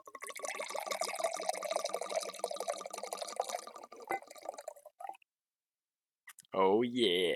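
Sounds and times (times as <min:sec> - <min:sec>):
wine pouring into a glass: 0:00.0 - 0:05.2
speech: 0:06.6 - 0:07.3.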